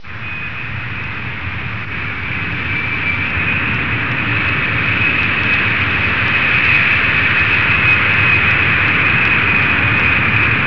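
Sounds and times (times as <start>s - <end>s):
B-52 bomber taxiing: 0.0s - 10.6s.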